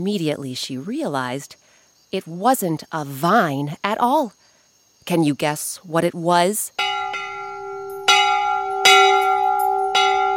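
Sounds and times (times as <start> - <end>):
speech: 0.0 - 4.4, 5.0 - 6.9
large brass bell ringing: 6.8 - 10.3.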